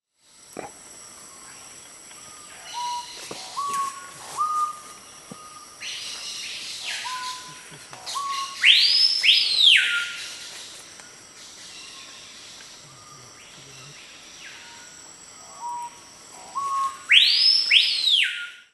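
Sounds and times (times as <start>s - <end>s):
chorona manchada bird singing: 1.3s - 10.8s, 11.4s - 18.7s.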